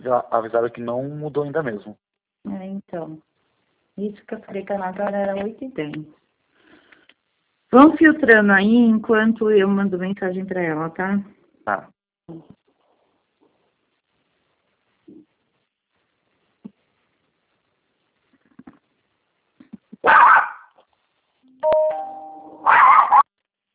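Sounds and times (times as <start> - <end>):
speech: 0.0 - 3.3, 4.0 - 6.2, 7.7 - 12.6
angry dog barking: 20.0 - 20.8, 22.6 - 23.3.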